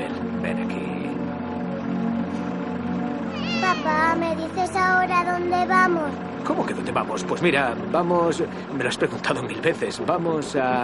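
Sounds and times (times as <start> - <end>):
steady droning hum: 1.1 - 8.8
kitten meowing: 3.3 - 4.2
speech: 4.2 - 10.8.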